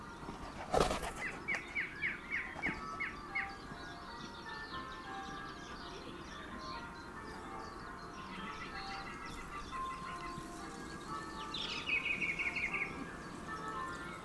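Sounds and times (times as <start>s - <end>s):
male song thrush singing: 0.0s - 14.2s.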